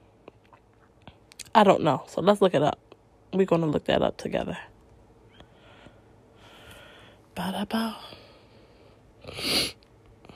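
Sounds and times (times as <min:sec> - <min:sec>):
speech: 0:01.6 - 0:04.7, 0:07.4 - 0:08.2
sniffing through a congested nose from a cold: 0:09.2 - 0:09.8.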